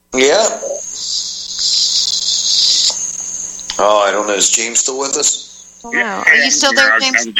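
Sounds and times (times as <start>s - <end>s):
small pet bird squawking and trilling: 0.2s - 7.3s
speech: 3.8s - 7.3s.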